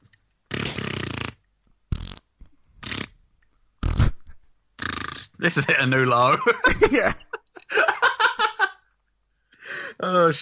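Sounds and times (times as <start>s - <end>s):
farting: 0.5s - 3.2s, 3.8s - 5.4s
speech: 5.4s - 7.3s, 10.0s - 10.3s
laughter: 5.5s - 8.8s.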